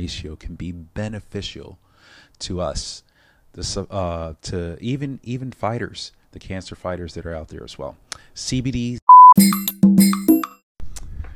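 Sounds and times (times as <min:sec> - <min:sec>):
speech: 0:00.0 - 0:09.9
bright electronic incoming phone call chime: 0:09.1 - 0:10.6
short high beep of a phone call alert: 0:09.1 - 0:10.6.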